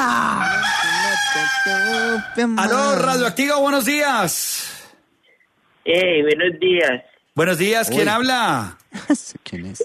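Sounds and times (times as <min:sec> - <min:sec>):
rooster crowing: 0:00.1 - 0:02.4
speech: 0:01.6 - 0:04.6, 0:05.8 - 0:09.8.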